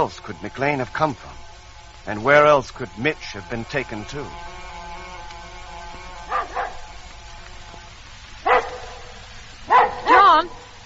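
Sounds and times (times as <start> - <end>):
speech: 0.0 - 1.4, 2.0 - 4.6
dog barking and yapping: 6.3 - 6.9, 8.4 - 10.6.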